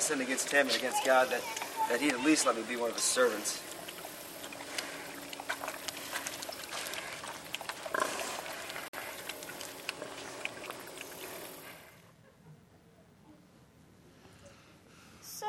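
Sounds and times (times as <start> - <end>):
wet sloshing of pigs at a trough: 0.0 - 12.0
speech: 0.1 - 3.8
pigs grunting and squealing while being fed: 1.0 - 11.6.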